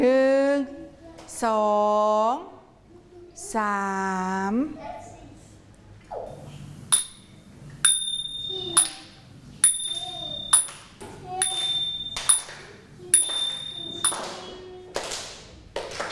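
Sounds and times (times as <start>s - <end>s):
speech: 1.4s - 2.5s, 3.4s - 5.0s
small Thai ching hand cymbals struck: 6.9s - 14.5s.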